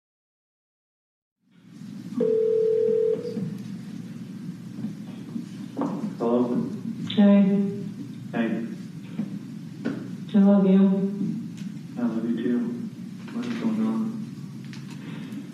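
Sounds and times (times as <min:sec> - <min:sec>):
low hum: 0:01.5 - 0:15.5
steady electronic tone on a telephone line: 0:02.2 - 0:03.5
speech: 0:10.5 - 0:11.2.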